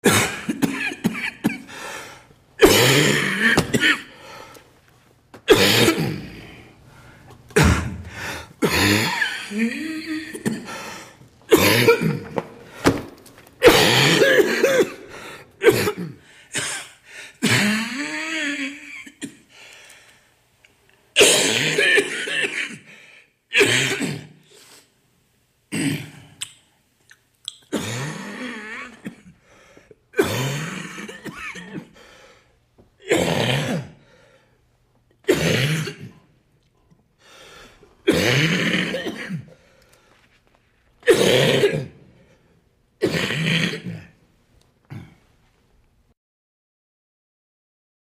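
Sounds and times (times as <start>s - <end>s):
man coughing hard: 0.0s - 1.8s, 2.6s - 4.2s, 5.5s - 6.6s, 7.6s - 10.8s, 11.5s - 12.4s, 13.6s - 19.5s, 21.2s - 22.9s, 23.5s - 24.4s, 25.7s - 26.2s, 27.7s - 29.4s, 30.1s - 32.0s, 33.0s - 34.0s, 35.2s - 36.3s, 38.0s - 39.6s, 41.0s - 42.1s, 43.0s - 44.2s.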